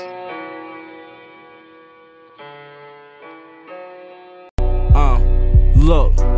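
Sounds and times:
hip-hop intro music: 4.6 - 6.3
sustained synth chords: 4.6 - 6.3.

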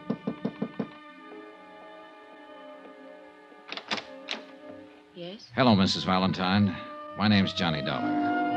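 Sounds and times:
sharp knocks on a wooden hotel room door: 0.0 - 1.0
speech: 5.2 - 8.4.

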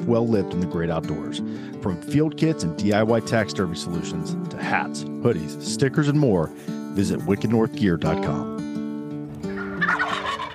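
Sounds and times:
speech: 0.0 - 8.6
wild turkeys gobbling: 9.4 - 10.5.

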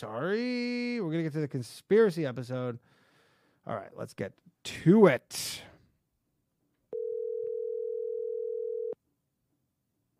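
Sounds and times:
speech: 0.0 - 3.0, 3.6 - 5.7
telephone dial tone: 6.9 - 9.0.

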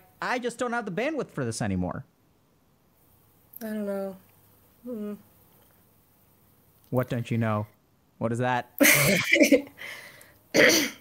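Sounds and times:
speech: 0.2 - 2.2, 3.6 - 5.3, 6.9 - 10.9
raspy cough with throat clearing: 8.8 - 9.6, 10.5 - 10.9
breathy sound: 9.8 - 10.4.

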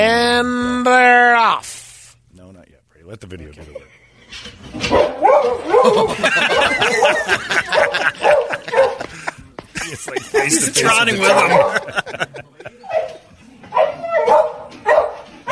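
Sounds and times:
speech: 0.0 - 1.7, 3.1 - 9.0, 9.9 - 12.5
faint noise: 0.0 - 15.5
dog barking and yelping excitedly at horse racing: 4.8 - 9.1, 10.3 - 12.2, 12.8 - 15.5
laughter: 5.7 - 13.5.

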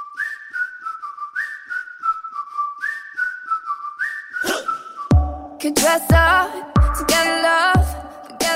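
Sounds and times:
whistled melody in a pop song: 0.0 - 6.4
light beat: 5.1 - 8.5
speech: 5.6 - 7.8.

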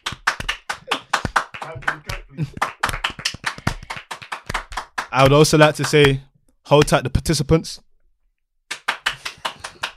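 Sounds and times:
rapid sharp hand claps: 0.0 - 6.2, 8.7 - 9.9
speech: 1.7 - 2.8, 5.1 - 7.9.

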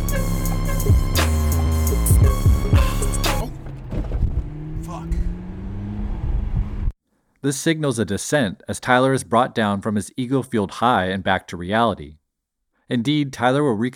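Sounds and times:
loud music with heavy hits: 0.0 - 3.5
sports car engine humming as it speeds away: 0.0 - 6.9
rumbling road noise: 0.6 - 6.9
speech: 7.4 - 12.2, 12.9 - 13.9.

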